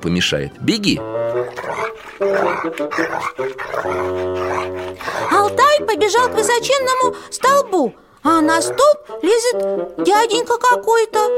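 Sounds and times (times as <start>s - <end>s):
speech: 0.0s - 11.3s
dog barking: 1.4s - 9.0s.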